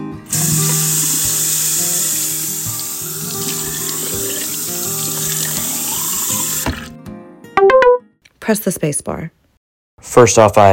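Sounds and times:
shower water running in a steady loud hiss: 0.3 - 6.9
speech: 8.5 - 9.5, 10.0 - 10.7.

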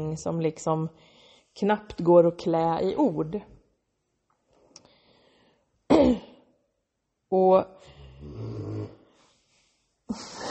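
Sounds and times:
speech: 0.0 - 3.6, 6.0 - 6.3, 7.3 - 8.6, 10.1 - 10.4
dog snoring: 8.0 - 9.0.

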